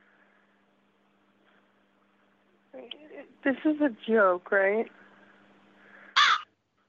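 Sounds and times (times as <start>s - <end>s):
speech: 2.8s - 5.0s
crow cawing inside a room: 6.1s - 6.5s.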